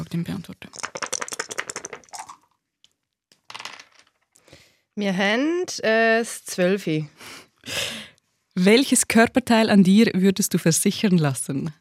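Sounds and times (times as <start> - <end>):
speech: 0.1 - 0.9, 5.0 - 7.8, 8.6 - 11.7
three dice rattling inside a cup during a dice game: 0.7 - 2.6, 3.3 - 4.3
dice tumbling and clacking onto a hard surface: 0.7 - 4.4.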